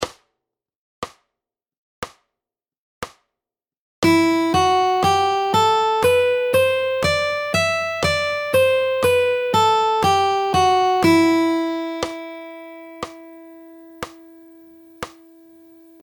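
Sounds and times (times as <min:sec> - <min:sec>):
musical scale: 0:04.0 - 0:15.7.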